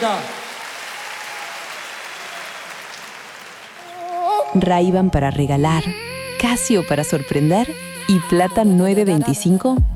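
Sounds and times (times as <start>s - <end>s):
speech: 0.0s - 0.4s, 4.5s - 9.9s
crowd applauding: 0.0s - 4.8s.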